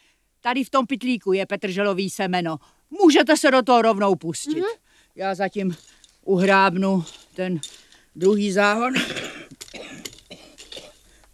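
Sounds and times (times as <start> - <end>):
speech: 0.4 - 9.3
harsh raspy coughing: 8.9 - 11.0.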